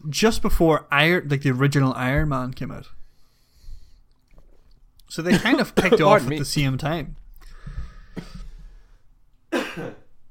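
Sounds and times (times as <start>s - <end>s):
speech: 0.0s - 3.0s, 5.1s - 7.2s
single sharp cough: 5.3s - 6.4s, 9.5s - 10.1s.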